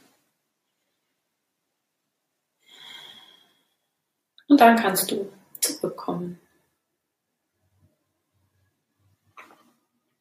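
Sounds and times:
deep breath in and out during guided meditation: 0:02.6 - 0:04.0
speech: 0:04.5 - 0:06.4.

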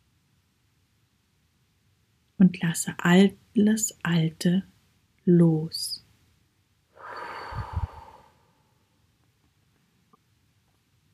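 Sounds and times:
speech: 0:02.4 - 0:04.7, 0:05.3 - 0:06.0
person breathing in deeply: 0:07.0 - 0:08.7.

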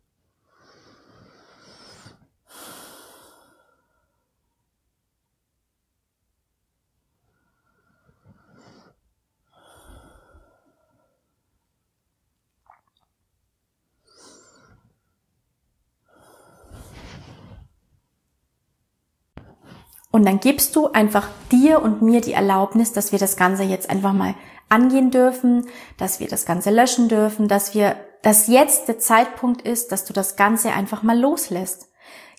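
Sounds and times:
deep breathing in and out: 0:00.4 - 0:04.4, 0:07.2 - 0:11.5, 0:14.0 - 0:15.2, 0:16.0 - 0:17.9, 0:24.4 - 0:24.7, 0:25.7 - 0:26.0, 0:32.0 - 0:32.3
speech: 0:20.1 - 0:32.3.

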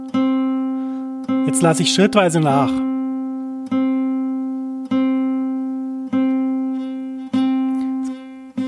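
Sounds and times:
plucked guitar string note pressed hard slightly out of tune: 0:00.0 - 0:08.6
speech: 0:01.5 - 0:02.9.

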